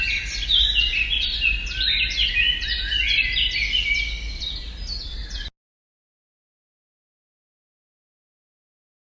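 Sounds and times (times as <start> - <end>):
Eurasian blackcap warbling: 0.0 - 5.5.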